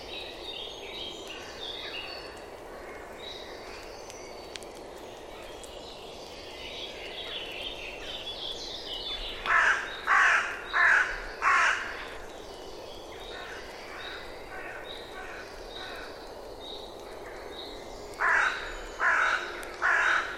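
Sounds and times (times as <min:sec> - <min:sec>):
bird giving harsh cawing calls: 0:09.5 - 0:12.1, 0:18.2 - 0:20.3.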